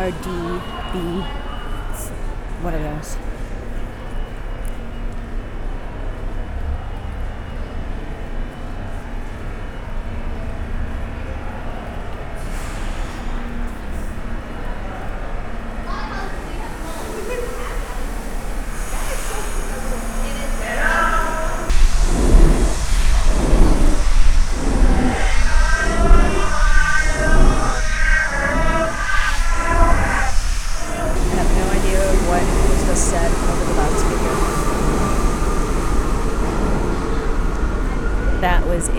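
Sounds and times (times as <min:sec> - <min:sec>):
speech: 0:00.0 - 0:01.5, 0:02.6 - 0:03.4
indistinct voices on a busy platform: 0:00.0 - 0:03.2, 0:18.0 - 0:38.9
subway express train rumbling through a station: 0:00.0 - 0:38.9
subway train metallic screeches: 0:22.4 - 0:34.4.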